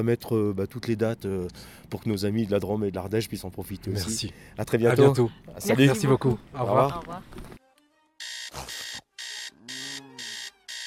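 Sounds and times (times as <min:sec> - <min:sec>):
speech: 0:00.0 - 0:07.6
alarm clock ringing in electronic bursts: 0:08.2 - 0:10.8.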